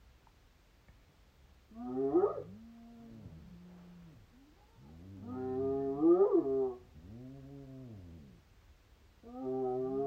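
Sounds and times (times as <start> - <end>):
hyena call: 1.7 - 7.2.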